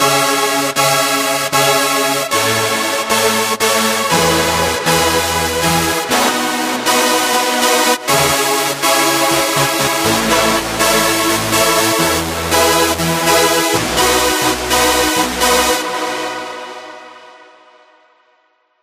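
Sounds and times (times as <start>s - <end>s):
big saw chords: 0.8s - 17.2s.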